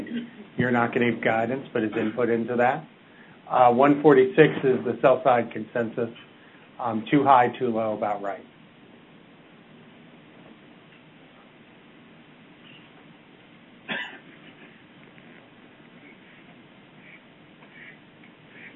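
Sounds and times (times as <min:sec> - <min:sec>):
hiss: 0:00.0 - 0:18.7
speech: 0:00.6 - 0:08.5
duck quacking: 0:16.0 - 0:18.7.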